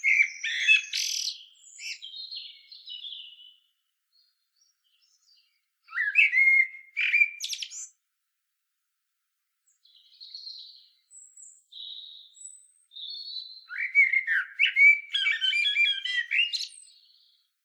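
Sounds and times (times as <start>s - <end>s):
common blackbird Turdus merula singing fluted phrases with scratchy twittering: 0.0s - 3.6s, 5.9s - 7.9s, 13.0s - 17.2s.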